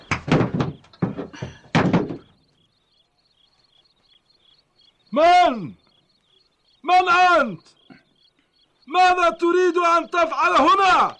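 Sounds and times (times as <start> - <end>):
heavy thuds against a wooden door being forced open: 0.1 - 2.4
speech: 5.1 - 5.8, 6.9 - 7.8, 8.9 - 11.1.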